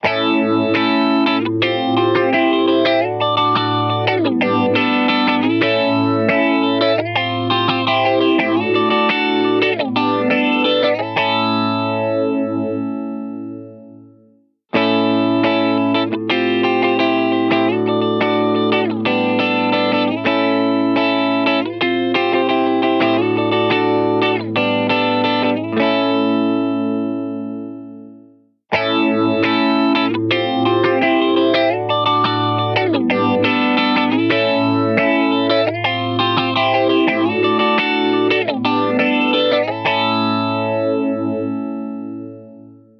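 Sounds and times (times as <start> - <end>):
guitar with phaser effect: 0.0 - 42.9.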